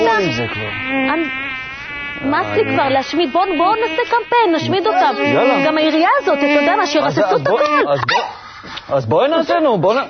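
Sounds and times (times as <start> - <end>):
mosquito buzzing with a high thin whine: 0.0 - 8.0
speech: 0.2 - 1.6, 2.2 - 10.0.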